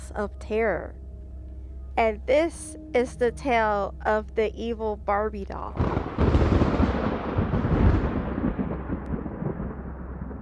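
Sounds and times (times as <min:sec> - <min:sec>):
speech: 0:00.2 - 0:01.0, 0:02.0 - 0:06.0
deep sustained rumble of thunder in a storm at night: 0:05.6 - 0:10.4.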